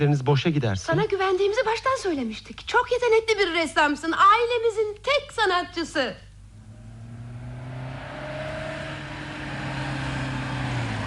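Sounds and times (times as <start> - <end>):
speech: 0.0 - 6.3
car engine humming as the vehicle approaches: 6.4 - 11.0.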